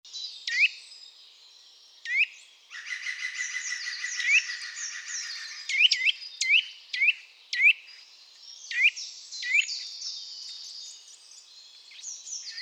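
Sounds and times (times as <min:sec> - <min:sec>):
Eurasian nuthatch Sitta europaea giving upslurred twit calls: 0:00.5 - 0:00.8, 0:02.1 - 0:07.8.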